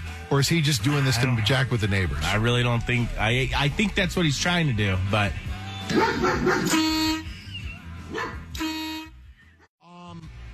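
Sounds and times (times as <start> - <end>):
speech: 0.3 - 7.0
dog barking: 5.9 - 6.8, 8.1 - 8.6.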